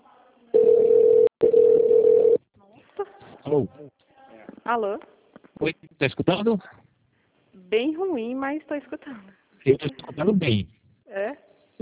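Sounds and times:
telephone tones after pressing two in a phone menu: 0.6 - 2.4
speech: 3.5 - 3.8, 4.7 - 6.8, 7.7 - 11.7.

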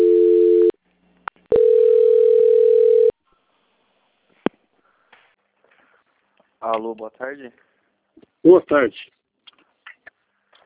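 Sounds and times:
telephone call-transfer tones on a call-centre line: 1.5 - 3.1
speech: 6.8 - 9.2.

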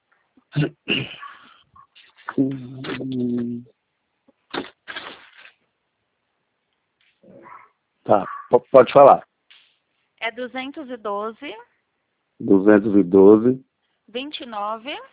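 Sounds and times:
speech: 0.5 - 1.2, 2.4 - 3.7, 8.0 - 9.3, 10.2 - 11.7, 12.4 - 15.1
rustling and clattering as someone digs through objects searching for a pen: 2.0 - 3.4, 4.4 - 5.6.

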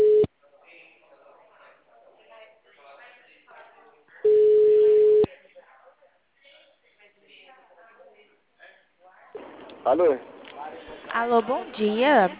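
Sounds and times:
telephone busy tone after a dropped call: 0.0 - 0.3, 4.3 - 5.3
voices: 0.0 - 12.3
speech: 9.9 - 10.3, 11.1 - 12.3.

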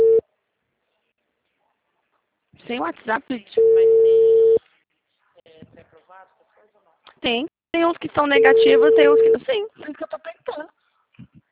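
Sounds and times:
telephone busy signal while dialing a number: 0.0 - 0.2, 3.6 - 4.6, 8.4 - 9.4
speech: 2.7 - 4.2, 5.8 - 10.8.

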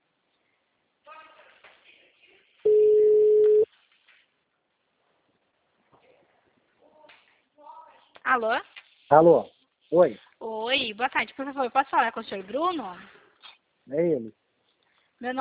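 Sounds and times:
telephone ringback tone while placing a call: 2.7 - 3.6
speech: 8.4 - 13.2, 13.9 - 14.4, 15.2 - 15.3.

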